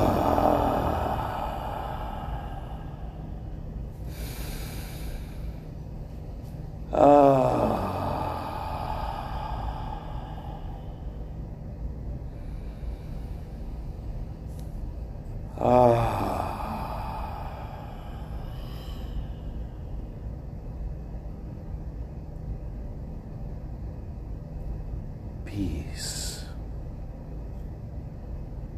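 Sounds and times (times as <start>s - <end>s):
deep slow breaths during a guided group relaxation: 0.0s - 21.2s
quiet hum: 0.0s - 28.7s.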